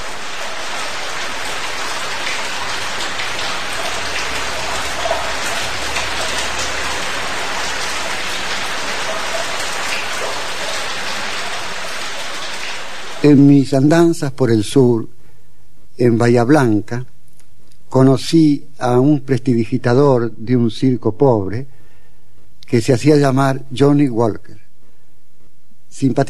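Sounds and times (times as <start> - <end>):
steady rain falling: 0.0 - 13.5
speech: 13.2 - 15.2, 16.0 - 17.1, 17.9 - 21.7, 22.7 - 24.6, 25.9 - 26.2.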